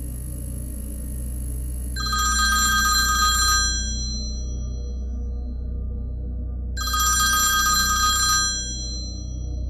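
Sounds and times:
low steady hum: 0.0 - 9.6
telephone bell ringing: 2.0 - 4.2, 6.8 - 9.2.

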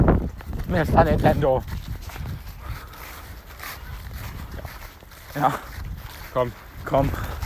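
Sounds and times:
feet of people running across the ground: 0.0 - 7.4
outdoor noise: 0.0 - 7.4
clothing rustling: 0.3 - 7.4
speech: 0.7 - 1.9, 5.4 - 5.7, 6.3 - 7.4.

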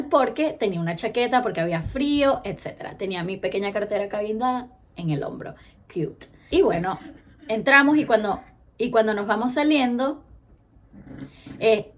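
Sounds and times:
speech: 0.1 - 10.2, 11.0 - 11.9
dog making a short low grumbling vocalization: 10.9 - 11.6.

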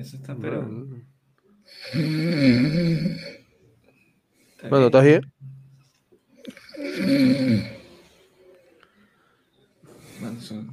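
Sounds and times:
speech: 0.0 - 1.1, 1.7 - 3.4, 4.6 - 5.4, 6.8 - 7.8
sleeping person snoring with a rough rattling rasp: 1.7 - 3.4, 6.5 - 8.0.

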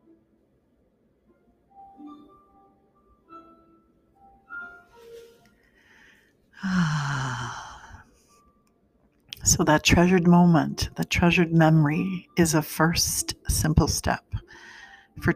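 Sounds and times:
deep breath let out as a long breathy sigh: 5.7 - 8.3
speech: 9.5 - 14.4, 15.2 - 15.3.

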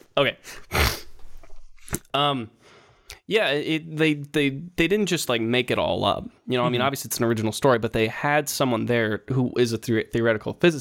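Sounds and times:
speech: 0.2 - 0.7, 2.1 - 10.7
person sneezing: 0.6 - 1.2.

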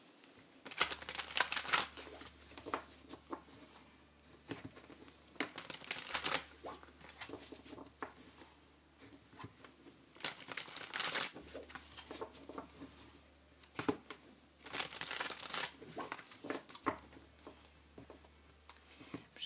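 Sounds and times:
tarot cards shuffled by hand: 0.6 - 19.1
soft rustles and small clicks of tarot cards: 1.9 - 5.6, 6.5 - 10.0, 11.2 - 14.3, 15.7 - 19.4.

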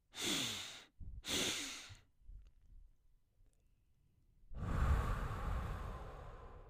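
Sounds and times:
short airy nasal inhales in a guided breathing exercise: 0.0 - 2.1, 4.5 - 6.6
longer louder exhale: 0.1 - 2.0, 4.6 - 6.6.

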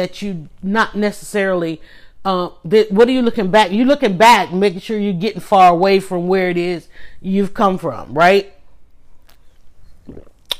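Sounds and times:
speech: 0.0 - 8.6
sipping lemonade from a glass: 9.1 - 10.5
sharp little smack: 9.2 - 10.5.

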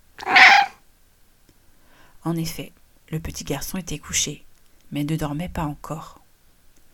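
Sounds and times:
small cat meowing softly at an open bedroom window: 0.2 - 0.8
speech: 2.2 - 6.2.

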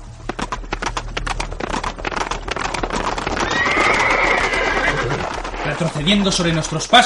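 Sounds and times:
horses' hooves clip-clopping: 0.0 - 7.0
low steady rumble: 0.0 - 7.0
horse whinnying: 3.1 - 6.2
speech: 5.8 - 7.0.

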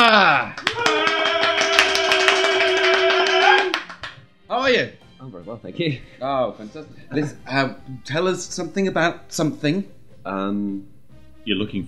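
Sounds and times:
sustained tonal whoop or musical note: 0.0 - 3.8
crowd applauding to welcome a guest: 0.0 - 4.2
speech: 4.8 - 11.8.

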